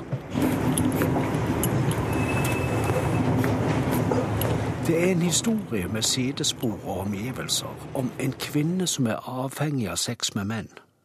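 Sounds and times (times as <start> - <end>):
rumble from inside a moving train: 0.0 - 9.1
thin high whine: 1.9 - 8.8
speech: 4.9 - 10.8.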